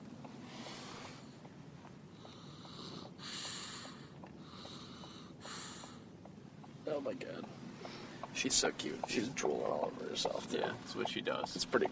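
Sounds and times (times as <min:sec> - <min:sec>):
breathy snoring with snorting rasps: 0:02.2 - 0:06.0
speech: 0:06.9 - 0:07.6, 0:08.4 - 0:11.9.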